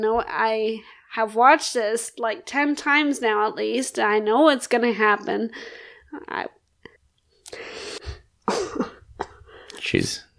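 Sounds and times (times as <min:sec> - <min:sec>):
speech: 0:00.0 - 0:06.6, 0:09.8 - 0:10.3
rough coughing in bursts: 0:08.0 - 0:09.8.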